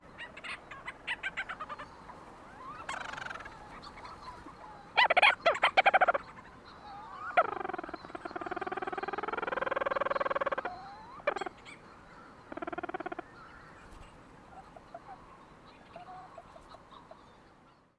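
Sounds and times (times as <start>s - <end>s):
Leach's storm petrel calling: 0.0s - 13.8s.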